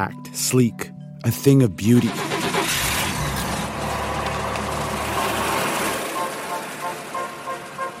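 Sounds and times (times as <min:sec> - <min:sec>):
speech: 0:00.0 - 0:02.4
newly released compact American car engine running: 0:02.2 - 0:07.9.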